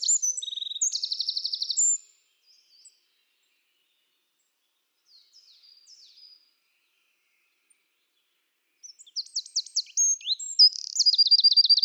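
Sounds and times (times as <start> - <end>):
Eurasian wren singing rapid high trills: 0.0 - 2.0, 8.9 - 11.8.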